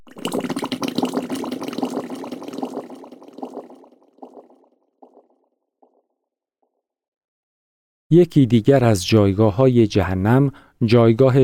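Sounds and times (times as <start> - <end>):
thick gurgling bubbling in muddy water: 0.0 - 6.0
speech: 8.1 - 11.4.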